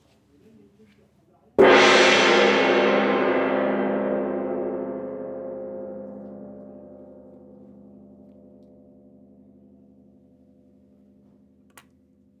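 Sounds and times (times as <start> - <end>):
small gong single stroke vibration: 1.6 - 10.7.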